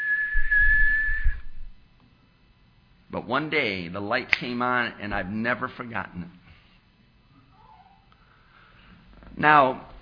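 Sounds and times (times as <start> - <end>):
person whistling one loud steady high note: 0.0 - 1.7
speech: 3.2 - 6.4, 9.4 - 9.9.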